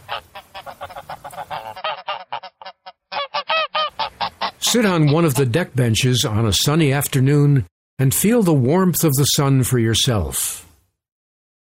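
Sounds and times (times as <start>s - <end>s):
pair of geese honking at a pond: 0.0s - 5.6s
speech: 4.7s - 10.7s.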